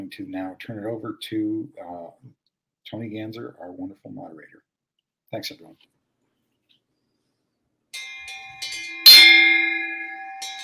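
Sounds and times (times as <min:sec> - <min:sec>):
speech: 0:00.1 - 0:04.7, 0:05.3 - 0:06.0
gong being struck: 0:08.3 - 0:10.6.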